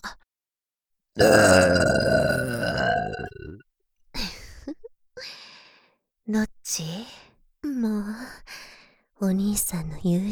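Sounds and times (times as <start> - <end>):
speech: 1.2 - 2.1, 9.3 - 10.3
two people burping together: 1.2 - 3.6.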